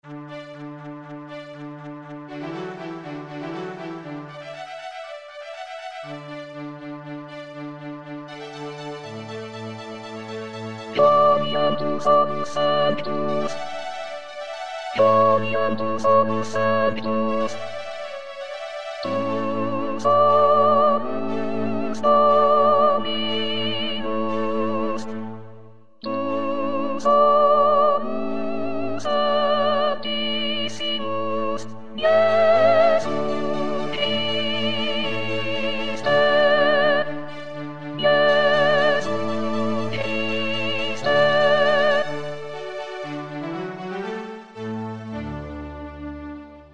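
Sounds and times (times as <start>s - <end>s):
soprano singing: 8.4s - 14.3s, 14.9s - 18.2s, 19.0s - 45.5s.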